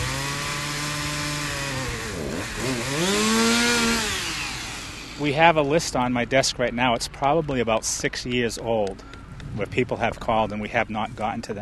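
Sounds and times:
chainsaw cutting a tree: 0:00.0 - 0:05.5
speech: 0:05.2 - 0:11.5.

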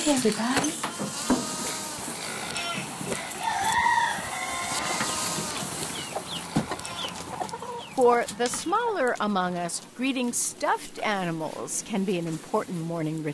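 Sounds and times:
speech: 0:00.0 - 0:01.2, 0:08.0 - 0:13.3
busy outdoor farmyard background in Boulder Colorado: 0:00.0 - 0:13.3
chickens clucking in Boulder Colorado: 0:00.7 - 0:08.7
rooster crowing in the morning in Boulder Colorado: 0:03.1 - 0:05.6.

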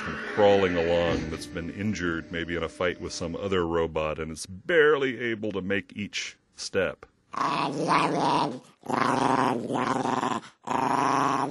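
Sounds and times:
speech: 0:00.1 - 0:11.4
Maltese dog growling: 0:07.4 - 0:11.4.

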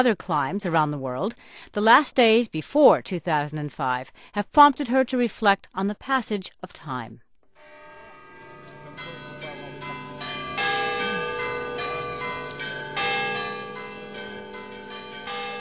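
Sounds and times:
speech: 0:00.0 - 0:07.2
several church bells ringing in overlapping peals: 0:07.6 - 0:15.5.

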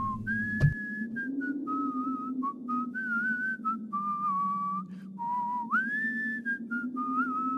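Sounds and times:
knock: 0:00.0 - 0:00.8
low steady hum: 0:00.0 - 0:00.8
person whistling an improvised melody: 0:00.0 - 0:07.5.

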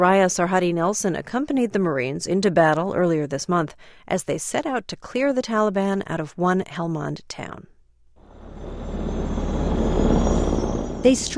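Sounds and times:
speech: 0:00.0 - 0:07.7, 0:11.0 - 0:11.3
military helicopters carrying assault teams rotor and engine roar: 0:08.2 - 0:11.3.

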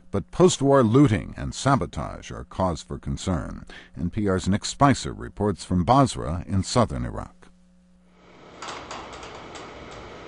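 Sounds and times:
steady low hum: 0:00.0 - 0:10.2
speech: 0:00.1 - 0:07.4
loose aluminum siding sheet creaking and rattling in heat at a water treatment plant in Basra: 0:08.6 - 0:10.2.

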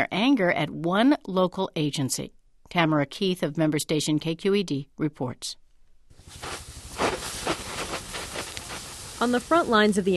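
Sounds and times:
speech: 0:00.0 - 0:05.6, 0:09.2 - 0:10.1
firefighters spraying water from a hose on smoldering hot spots: 0:06.2 - 0:10.1.

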